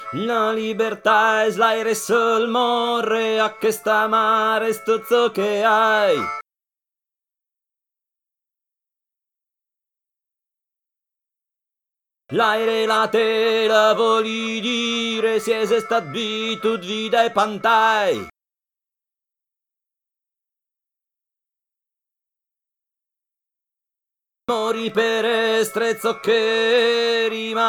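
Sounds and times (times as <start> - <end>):
tenor singing: 0.0 - 6.4, 12.3 - 18.3, 24.5 - 27.6.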